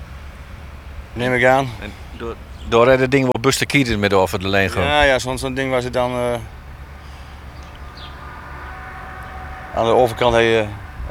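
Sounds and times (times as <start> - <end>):
old locomotive running with a low rumbling drone: 0.0 - 11.0
speech: 1.2 - 6.6, 9.8 - 10.8
faint high squeaks: 6.0 - 11.0.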